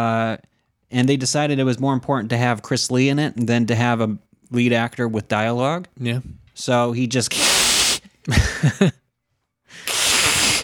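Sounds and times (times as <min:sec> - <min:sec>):
speech: 0:00.0 - 0:07.5, 0:08.2 - 0:08.9
voice imitating a cat's hiss: 0:07.3 - 0:08.1, 0:09.7 - 0:10.6.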